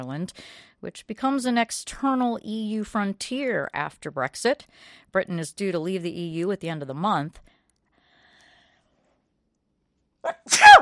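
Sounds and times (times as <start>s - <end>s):
speech: 0.0s - 7.5s, 10.2s - 10.7s
human sneeze: 10.3s - 10.7s.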